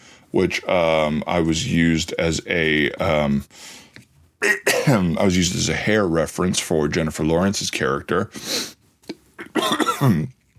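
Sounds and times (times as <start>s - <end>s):
speech: 0.3s - 3.8s, 4.4s - 8.8s, 9.5s - 10.4s
harsh throaty coughing fit: 4.4s - 5.2s, 9.4s - 10.4s.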